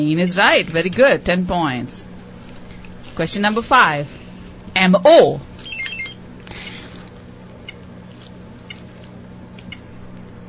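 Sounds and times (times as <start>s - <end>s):
speech: 0.0s - 2.1s, 3.2s - 4.2s, 4.8s - 5.5s
steady low hum: 0.0s - 10.4s
quiz timer high electronic beeps: 5.6s - 6.2s.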